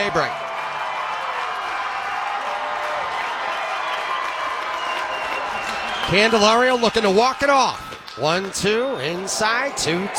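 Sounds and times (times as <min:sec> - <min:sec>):
speech: 0:00.0 - 0:00.4, 0:06.1 - 0:10.1
big baseball stadium crowd clapping along: 0:00.0 - 0:10.1
a few voices rising above the crowd roar: 0:04.8 - 0:10.1.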